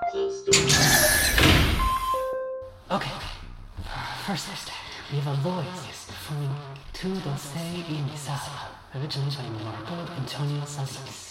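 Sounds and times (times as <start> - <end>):
door shutting thud: 0.6 - 2.2
speech: 2.9 - 3.2, 4.3 - 11.3.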